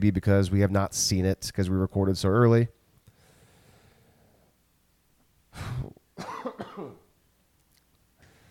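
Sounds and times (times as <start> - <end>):
speech: 0.0 - 2.8
person coughing with a throaty rasp: 5.6 - 7.1.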